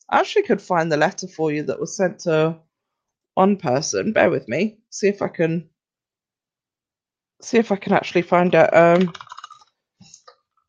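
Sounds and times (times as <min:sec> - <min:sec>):
speech: 0:00.1 - 0:02.6, 0:03.4 - 0:05.7, 0:07.4 - 0:09.3
loud computer keyboard typing: 0:08.7 - 0:09.6.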